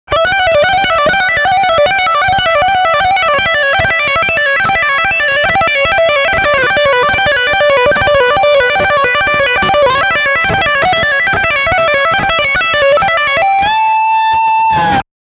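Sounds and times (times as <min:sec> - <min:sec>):
guitar lick on bridge humbucker pickup: 0:00.1 - 0:15.0.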